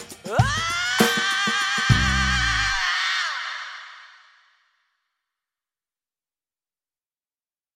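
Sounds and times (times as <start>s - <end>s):
yell stinger: 0.3s - 4.3s.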